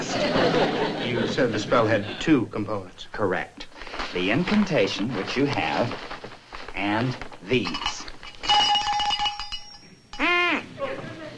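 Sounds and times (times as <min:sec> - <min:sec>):
laughter: 0:00.0 - 0:02.3
speech: 0:01.3 - 0:06.1, 0:06.8 - 0:07.9
cowbell clanking: 0:07.6 - 0:10.4
short nasal honk from a duck call: 0:10.2 - 0:10.8.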